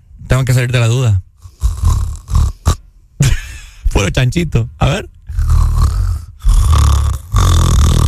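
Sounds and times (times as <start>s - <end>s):
speech: 0.4s - 1.2s, 4.0s - 5.2s
person imitating snoring: 1.4s - 2.8s, 5.3s - 8.0s
laughter: 3.2s - 3.8s.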